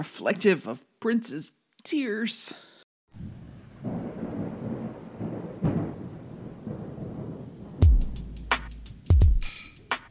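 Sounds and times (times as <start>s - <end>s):
speech: 0.0s - 3.2s
thunderstorm rumbling: 3.1s - 8.3s
steady rain: 3.2s - 7.9s.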